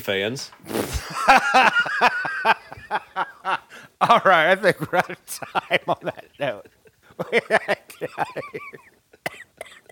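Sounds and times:
speech: 0.0s - 3.0s, 4.0s - 6.6s, 7.3s - 8.8s
laughter: 1.0s - 9.0s
person coughing harshly: 9.2s - 9.9s.

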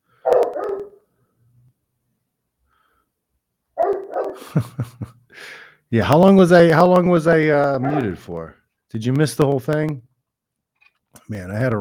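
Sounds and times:
dog barking sharply: 0.2s - 1.0s, 3.8s - 4.5s, 7.8s - 8.2s
laughter: 4.4s - 5.3s
speech: 4.4s - 10.1s, 11.2s - 11.7s.

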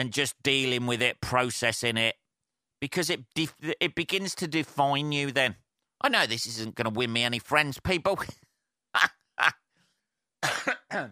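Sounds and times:
speech: 0.0s - 2.2s, 2.8s - 8.4s, 9.0s - 9.6s, 10.4s - 11.1s
person coughing harshly: 10.4s - 11.1s.

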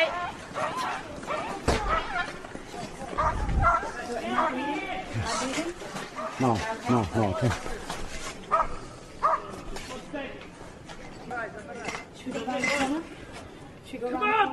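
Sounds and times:
commotion and voices: 0.0s - 14.5s
several dogs barking and yipping: 0.5s - 2.4s, 3.1s - 4.6s
speech: 6.4s - 7.8s.

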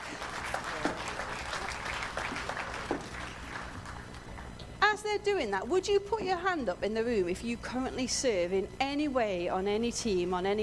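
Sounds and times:
room full of people applauding: 0.0s - 4.6s
speech: 5.2s - 10.6s.

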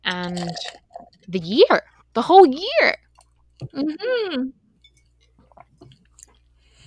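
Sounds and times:
quiet hum: 0.0s - 6.8s
speech: 0.1s - 3.0s, 3.6s - 4.6s
person taking a long sip of a Moscow Mule cocktail: 0.2s - 1.2s.

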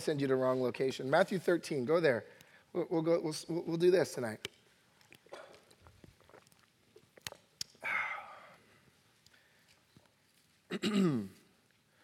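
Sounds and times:
speech: 0.0s - 4.5s, 10.8s - 11.4s
person with a tickle in their throat clearing it during a Bible talk: 10.7s - 11.5s.

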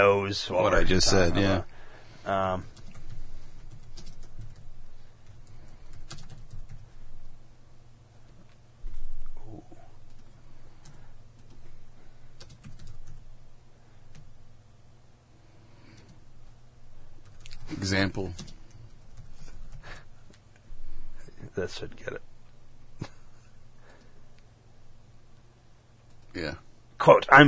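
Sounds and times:
speech: 0.0s - 2.8s, 17.9s - 18.6s, 21.6s - 22.3s, 26.4s - 27.4s
faint low hum: 0.0s - 27.4s
typing on a computer keyboard: 2.8s - 6.9s, 12.4s - 13.2s, 17.2s - 17.6s, 18.2s - 19.8s.

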